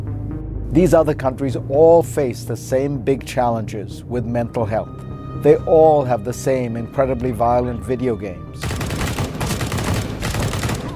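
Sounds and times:
speech: 0:00.7 - 0:08.7
rapid gunfire: 0:08.6 - 0:10.9.

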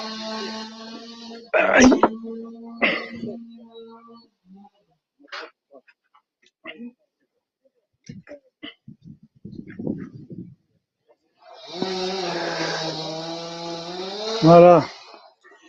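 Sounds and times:
chainsaw engine running: 0:00.0 - 0:04.0, 0:11.5 - 0:15.4
speech: 0:01.6 - 0:02.6, 0:14.4 - 0:14.9.

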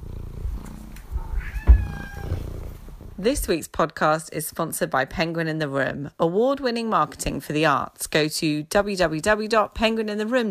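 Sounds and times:
cat purring: 0:00.0 - 0:03.6
speech: 0:03.2 - 0:10.4.

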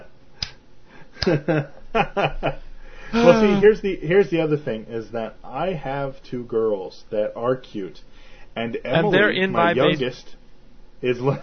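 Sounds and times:
person clapping slowly: 0:01.2 - 0:01.4
laughter: 0:01.2 - 0:03.7
speech: 0:01.2 - 0:10.4, 0:11.0 - 0:11.4.

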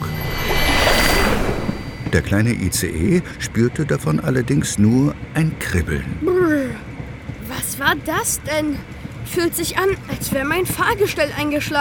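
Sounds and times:
shimmering magical chime of a magic spell: 0:00.0 - 0:02.5
speech: 0:02.1 - 0:06.9, 0:07.8 - 0:11.7.

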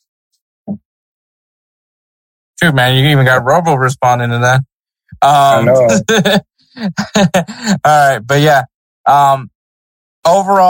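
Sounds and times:
speech: 0:02.6 - 0:09.5, 0:10.2 - 0:10.6
laughter: 0:05.3 - 0:08.3
short cough from a sick person: 0:05.6 - 0:06.1.

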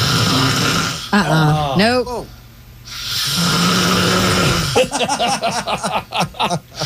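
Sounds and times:
man snoring loudly in his sleep: 0:00.0 - 0:01.3, 0:02.9 - 0:04.9
laughter: 0:04.8 - 0:06.8.

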